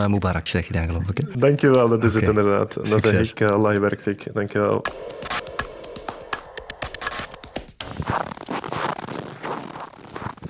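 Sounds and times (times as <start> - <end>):
speech: 0.0 - 5.5
footsteps crunching in snow: 7.8 - 10.4.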